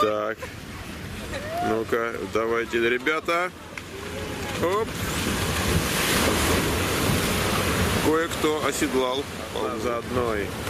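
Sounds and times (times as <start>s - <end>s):
ocean waves breaking and churning into foam: 0.0s - 10.6s
speech: 0.1s - 0.7s, 1.6s - 3.7s, 4.6s - 5.4s, 8.1s - 10.6s
wind noise buffeting the microphone: 3.8s - 10.6s.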